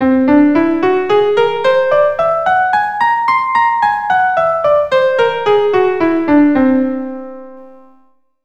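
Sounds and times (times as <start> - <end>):
keyboard playing C whole tone scale: 0.0 - 8.0.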